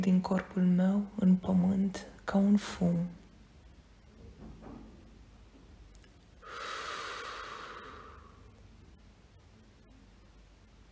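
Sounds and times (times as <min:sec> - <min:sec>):
speech: 0:00.0 - 0:03.2
deep slow breathing during a relaxation exercise: 0:06.4 - 0:08.6.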